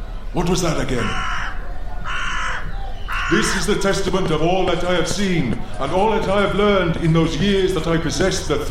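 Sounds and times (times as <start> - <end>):
low hum: 0.0 - 8.6
speech: 0.3 - 1.4, 3.3 - 8.6
crow cawing: 0.9 - 3.8.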